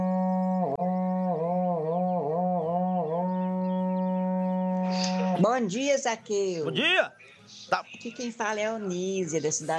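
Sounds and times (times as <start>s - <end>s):
berrante cattle horn being blown: 0.1s - 5.4s
speech: 5.5s - 9.7s.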